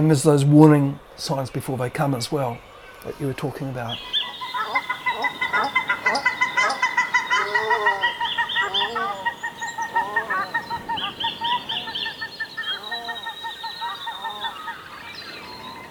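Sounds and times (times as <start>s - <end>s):
speech: 0.0s - 4.2s
paradise ducks honking while flying over: 3.9s - 15.8s.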